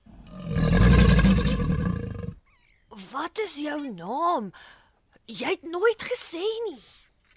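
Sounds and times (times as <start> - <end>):
deep rumbling crocodile growl: 0.2 - 2.4
speech: 3.2 - 7.0.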